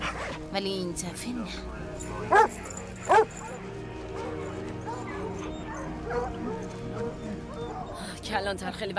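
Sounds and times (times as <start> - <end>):
speech: 0.5 - 3.4, 8.3 - 8.9
search dogs barking: 2.2 - 8.0.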